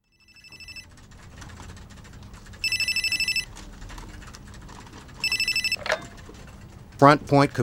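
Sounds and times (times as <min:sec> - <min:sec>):
telephone ringing as a call is placed to an office in New York: 0:00.0 - 0:00.9, 0:02.6 - 0:03.5, 0:05.2 - 0:06.3
low hum: 0:00.1 - 0:07.6
speech: 0:07.0 - 0:07.6.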